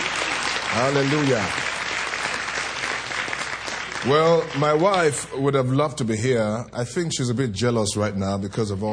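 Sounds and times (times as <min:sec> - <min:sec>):
crowd applauding with hand clapping: 0:00.0 - 0:05.3
speech: 0:00.7 - 0:01.6, 0:04.0 - 0:08.9.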